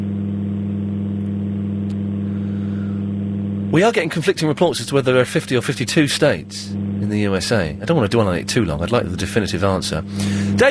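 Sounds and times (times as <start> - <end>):
steady loud electrical hum over an open phone line: 0.0 - 10.7
speech: 3.7 - 10.7.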